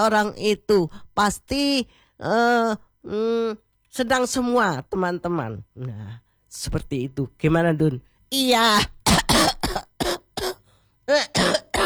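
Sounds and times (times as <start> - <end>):
speech: 0.0 - 9.9, 11.1 - 11.6
harsh raspy coughing: 9.0 - 10.6, 11.2 - 11.8.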